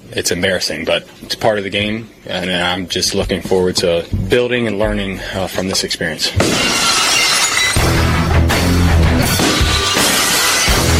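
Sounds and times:
speech: 0:00.1 - 0:07.2
low rumbling thuds: 0:03.1 - 0:05.1
bright tinkling glass shards: 0:06.4 - 0:08.0, 0:09.4 - 0:10.9
glass shattering: 0:06.4 - 0:08.2, 0:09.2 - 0:10.9.

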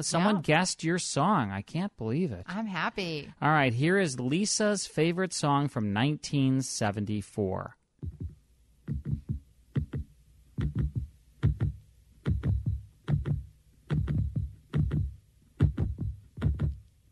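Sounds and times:
speech: 0:00.0 - 0:08.3
deep heartbeat-like thumps in a song intro: 0:08.0 - 0:17.0.

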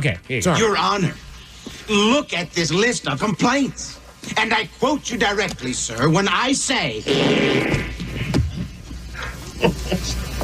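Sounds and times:
speech: 0:00.0 - 0:07.9
person vocally imitating fart noises: 0:07.0 - 0:08.8.

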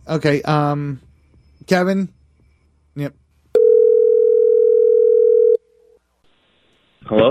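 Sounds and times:
speech: 0:00.1 - 0:02.2, 0:03.0 - 0:03.2, 0:07.1 - 0:07.2
telephone dial tone after caller hangs up: 0:03.6 - 0:05.6.

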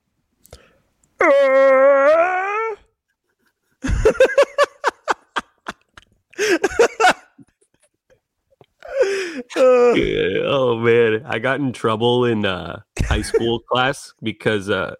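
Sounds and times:
speech: 0:01.2 - 0:02.1, 0:10.0 - 0:14.9
person imitating a white whale with a long wavering high tonal moan: 0:01.2 - 0:02.9
choppy bursts of laughter: 0:03.8 - 0:07.6, 0:13.0 - 0:13.6.

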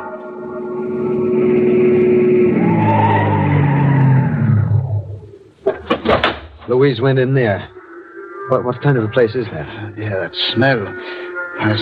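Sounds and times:
car engine roaring: 0:00.2 - 0:05.6
car tires squealing and skidding as the car pulls away fast: 0:02.1 - 0:04.6
sharp knocks: 0:05.7 - 0:06.7
speech: 0:06.9 - 0:07.7, 0:08.5 - 0:11.7.

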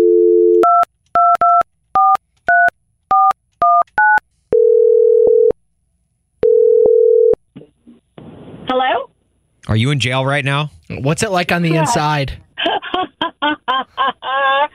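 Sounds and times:
long phone ringing tones: 0:00.0 - 0:00.8, 0:04.6 - 0:05.6, 0:06.4 - 0:07.4
phone dial tone: 0:00.0 - 0:02.2, 0:03.1 - 0:05.6, 0:06.4 - 0:07.4
speech: 0:09.7 - 0:12.4
laughter: 0:11.8 - 0:14.7.

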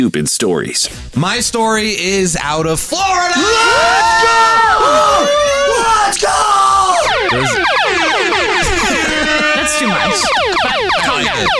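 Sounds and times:
speech: 0:00.0 - 0:08.5, 0:09.6 - 0:11.5
laughter: 0:04.8 - 0:06.1, 0:07.0 - 0:11.5
swooping laser-like electronic tones: 0:06.8 - 0:11.5
game show bonus sound effect: 0:07.0 - 0:11.5.

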